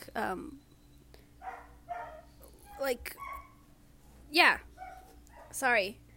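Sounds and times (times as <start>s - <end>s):
low steady hum: 0.0s - 6.1s
speech: 0.2s - 0.7s, 2.8s - 3.3s, 4.3s - 4.7s, 5.5s - 6.0s
neighbours' dogs barking outside: 1.4s - 3.6s, 4.8s - 5.6s.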